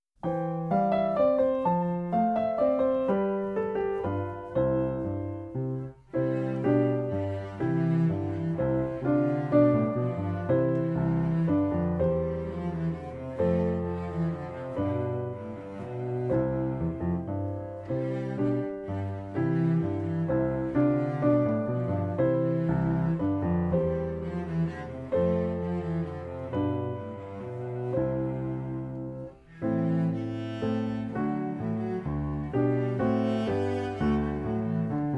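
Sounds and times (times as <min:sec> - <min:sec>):
piano: 0:00.0 - 0:35.1
cello: 0:00.2 - 0:35.1.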